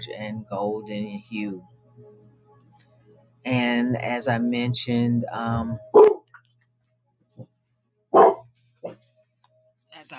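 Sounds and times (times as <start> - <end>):
speech: 0.0 - 2.2, 3.4 - 6.1
dog barking at a noise outside the house: 5.9 - 6.3, 8.1 - 9.0.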